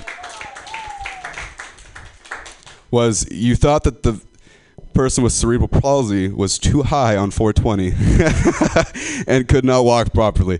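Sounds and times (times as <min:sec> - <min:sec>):
audience applause: 0:00.0 - 0:02.8
speech: 0:02.9 - 0:04.3, 0:05.0 - 0:10.5
laughter: 0:08.1 - 0:09.0.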